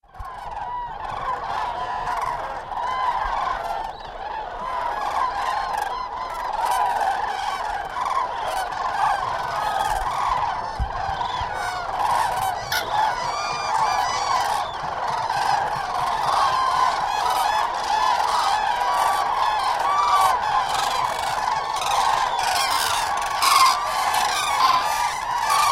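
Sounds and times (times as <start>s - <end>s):
cranes calling in the morning: 0.2s - 25.7s.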